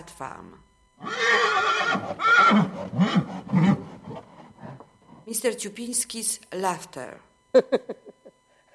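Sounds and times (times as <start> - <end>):
speech: 0.0 - 3.8, 5.3 - 8.0
Arabian horse neighing: 1.0 - 3.9.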